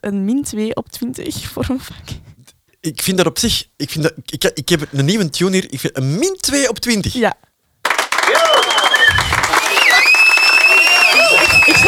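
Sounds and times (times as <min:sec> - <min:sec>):
speech: 0:00.0 - 0:07.5
crowd clapping: 0:07.8 - 0:11.8
laughter: 0:08.2 - 0:11.8.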